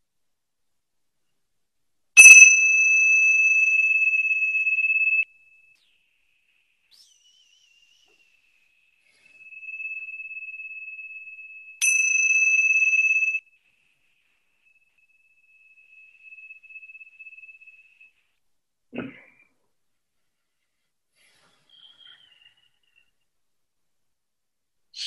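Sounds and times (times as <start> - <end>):
meditation bell ringing: 2.2 - 5.2, 9.2 - 13.6, 14.4 - 18.2.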